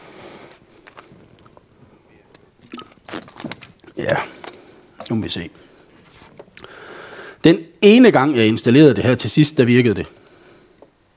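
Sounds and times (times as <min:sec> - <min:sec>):
person sipping water with wet mouth sounds: 0:00.5 - 0:05.2, 0:06.0 - 0:06.8
person gulping water: 0:02.3 - 0:05.2
speech: 0:04.0 - 0:04.5, 0:05.1 - 0:05.8, 0:07.4 - 0:10.2.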